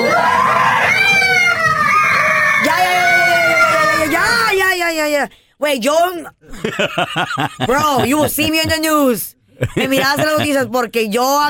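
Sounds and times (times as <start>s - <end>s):
children screaming in fright at people wearing masks: 0.0s - 4.6s
speech: 5.2s - 11.4s
laughter: 6.5s - 9.0s, 9.6s - 10.8s.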